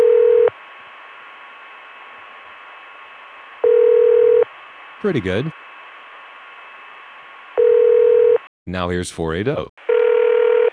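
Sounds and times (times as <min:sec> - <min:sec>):
telephone ringing tone: 0:00.0 - 0:00.5, 0:03.6 - 0:04.5, 0:07.6 - 0:08.4, 0:09.9 - 0:10.7
speech: 0:05.0 - 0:05.6, 0:08.7 - 0:09.7.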